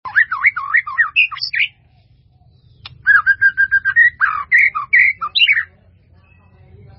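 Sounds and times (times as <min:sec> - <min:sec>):
White-rumped Shama song with swooping whistles and warbled phrases: 0:00.1 - 0:01.8, 0:02.8 - 0:05.7.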